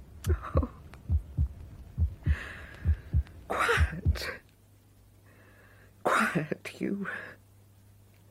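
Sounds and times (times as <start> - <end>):
speech: 0.3 - 0.7, 6.4 - 7.4
person's own heartbeat thudding in lub-dub beats: 0.3 - 4.4.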